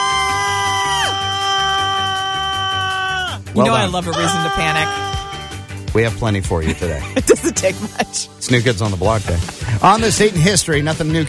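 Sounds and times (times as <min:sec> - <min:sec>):
people screaming: 0:00.0 - 0:05.7
speech: 0:03.6 - 0:05.2, 0:06.0 - 0:11.2.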